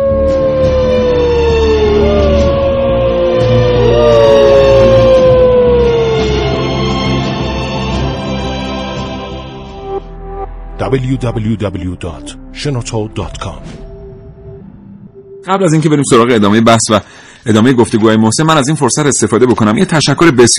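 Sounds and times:
wolves howling: 0.0 - 7.4
speech: 10.9 - 13.8, 15.4 - 20.5.

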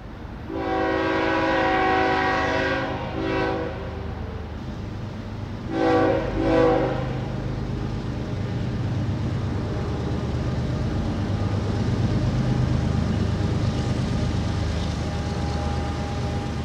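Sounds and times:
passing train rumbling: 0.0 - 16.6
train horn blaring: 0.4 - 4.5, 5.7 - 7.4, 15.0 - 16.6.

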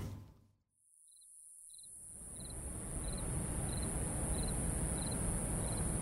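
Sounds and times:
crickets chirping in chorus at night beside a railway track: 1.1 - 5.9
high insect drone: 1.1 - 5.9
broad rushing noise: 2.5 - 5.9.

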